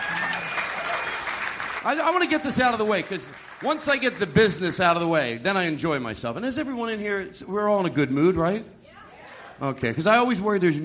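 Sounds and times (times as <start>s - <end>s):
audience applause for the band: 0.0s - 4.4s
speech: 1.8s - 8.8s, 9.6s - 10.8s.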